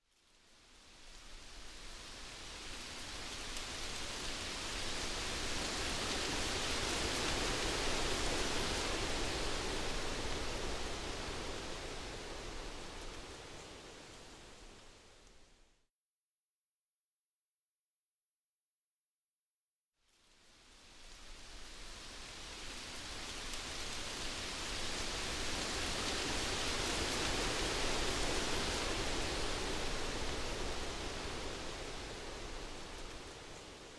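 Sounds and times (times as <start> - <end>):
leaves blowing in the wind: 0.4 - 15.6, 20.4 - 33.9.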